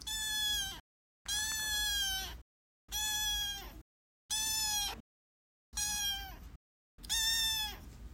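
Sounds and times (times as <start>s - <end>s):
kitten meowing: 0.0s - 5.0s, 5.8s - 6.4s, 7.0s - 7.8s.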